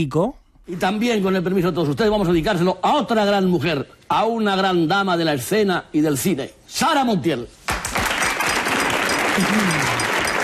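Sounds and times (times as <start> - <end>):
speech: 0.0 - 7.6, 9.4 - 10.0
crowd applauding: 7.7 - 10.4.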